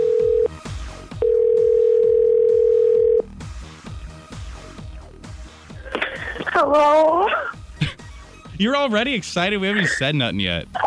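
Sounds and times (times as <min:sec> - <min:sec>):
electronic phone ringing tone: 0:00.0 - 0:00.5, 0:01.2 - 0:03.3
rhythmic music: 0:03.3 - 0:10.8
speech: 0:06.7 - 0:07.1, 0:08.6 - 0:10.8.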